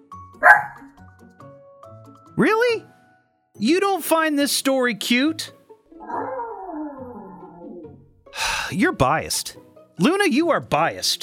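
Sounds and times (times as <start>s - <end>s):
pet dog barking: 0.4s - 0.9s, 6.0s - 7.5s
speech: 2.4s - 2.9s, 3.6s - 5.6s, 8.8s - 11.2s.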